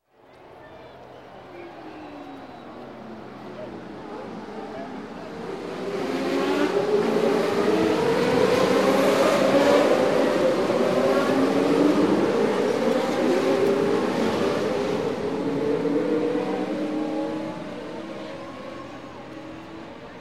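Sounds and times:
Indy style racing cars: 0.2s - 20.2s.

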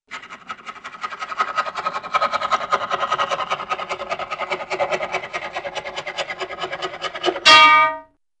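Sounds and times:
funny rapid cartoon sawing: 0.0s - 7.6s
cartoon bell bonk: 7.4s - 8.1s.

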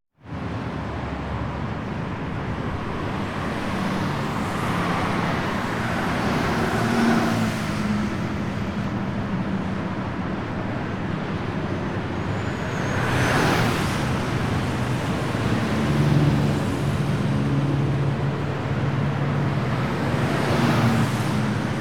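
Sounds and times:
highway traffic: 0.2s - 21.8s.

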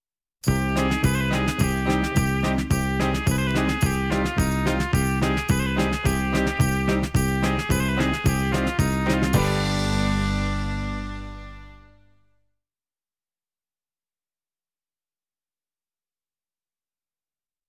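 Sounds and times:
Arabian music: 0.5s - 11.9s.

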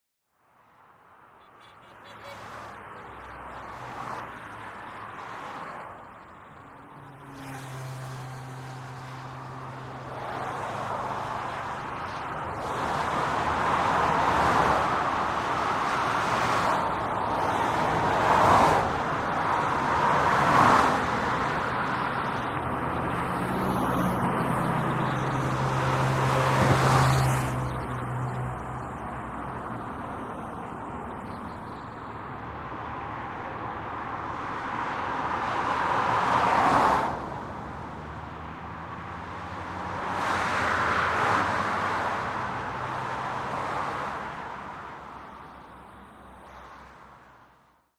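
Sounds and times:
ring road traffic: 0.2s - 47.9s.

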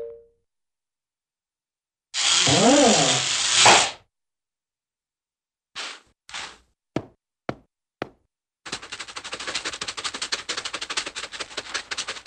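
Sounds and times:
cartoon boring into ground: 2.2s - 4.0s.

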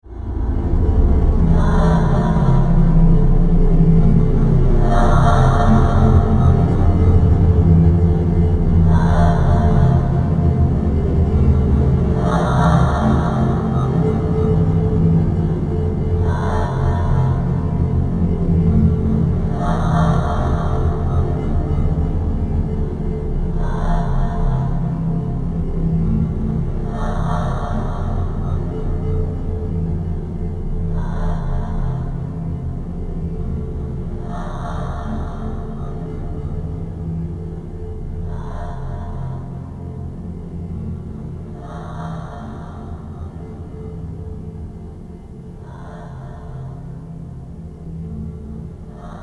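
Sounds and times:
low eerie sound: 0.0s - 49.2s.

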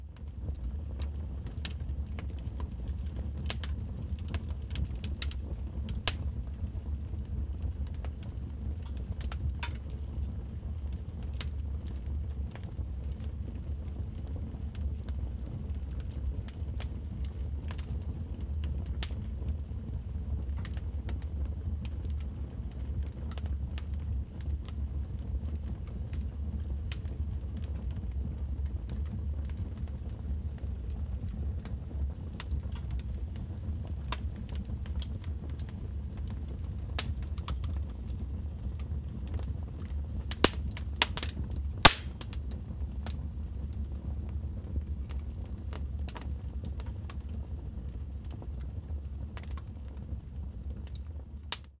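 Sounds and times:
indoor fireplace fire: 0.0s - 51.7s.

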